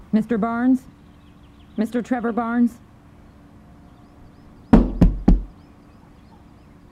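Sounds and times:
speech: 0.2s - 1.0s, 1.8s - 2.8s
firm knocking on a door: 4.8s - 5.5s.

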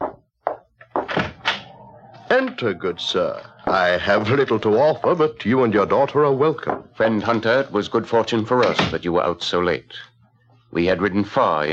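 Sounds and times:
heavy wooden door opening: 0.9s - 2.7s
speech: 2.3s - 10.1s, 10.7s - 11.7s.

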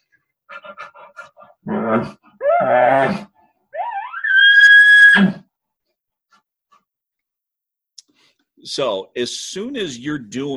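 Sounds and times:
speech: 1.6s - 3.3s, 8.8s - 10.5s
bull whining during a breeding sequence: 1.6s - 5.5s.

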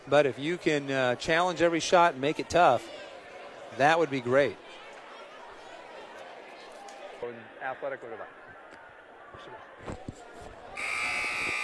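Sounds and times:
speech: 0.1s - 3.0s, 3.7s - 4.6s, 7.7s - 8.4s
basketball arena buzzer blaring: 10.8s - 11.6s.

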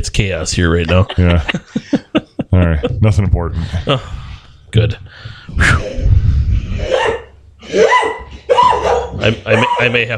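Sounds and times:
speech: 0.2s - 6.1s, 9.2s - 10.1s
laughter: 0.6s - 4.2s
dogs barking and yelping while fighting over a bone: 6.0s - 10.0s.

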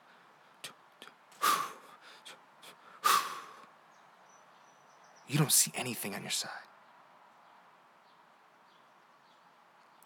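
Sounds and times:
heavy breathing of a sprinter: 0.0s - 3.7s
speech: 5.3s - 6.7s.

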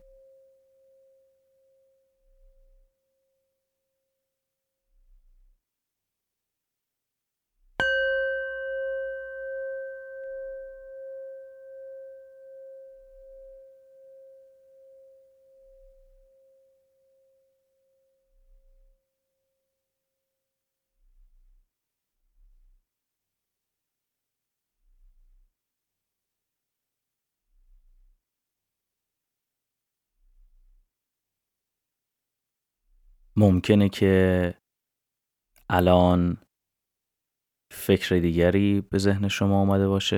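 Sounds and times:
Tibetan singing bowl struck and ringing: 7.8s - 16.8s
speech: 33.4s - 34.6s, 35.7s - 36.4s, 37.7s - 40.1s.

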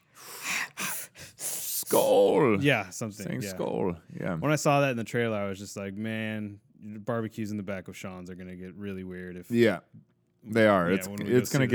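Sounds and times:
heavy breathing into a microphone: 0.0s - 1.9s
speech: 1.9s - 11.7s.

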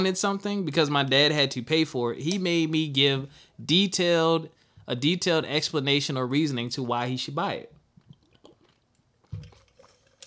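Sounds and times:
speech: 0.0s - 7.7s
person sipping water: 7.7s - 10.2s
swallowing and gulping: 7.9s - 10.2s.

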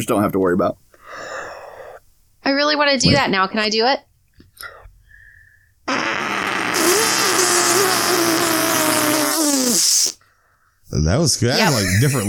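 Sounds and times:
speech: 0.0s - 1.3s, 2.5s - 4.8s, 5.9s - 6.3s, 10.9s - 12.2s
breaths: 0.9s - 2.1s, 4.6s - 5.8s, 10.2s - 10.9s
voice making a buzzing raspberry imitating a fart: 5.9s - 10.2s, 11.5s - 12.2s
laughter: 11.6s - 12.2s.

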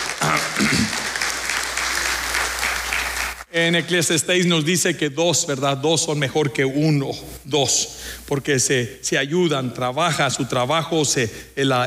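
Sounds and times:
audience clapping in a large room: 0.0s - 3.5s
speech: 3.6s - 11.8s.

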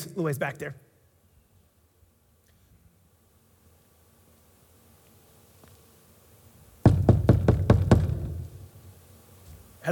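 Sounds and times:
speech: 0.2s - 0.9s
firm knocking on a wooden door: 6.8s - 8.5s.

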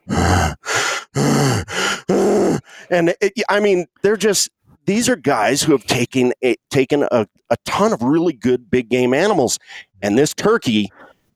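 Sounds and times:
person imitating excited heavy breathing of bow hunters: 0.0s - 2.9s
speech: 2.9s - 11.1s.

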